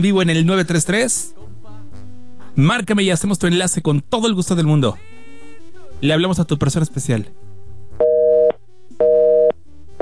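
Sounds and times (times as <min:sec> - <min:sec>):
speech: 0:00.0 - 0:01.4, 0:02.6 - 0:05.2, 0:06.0 - 0:07.4
telephone busy signal: 0:08.0 - 0:09.6.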